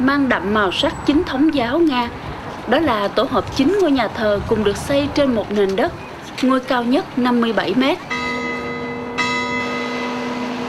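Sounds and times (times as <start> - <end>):
speech: 0.1 - 8.2
clock tower bell chiming deep resonant tones: 8.0 - 10.6.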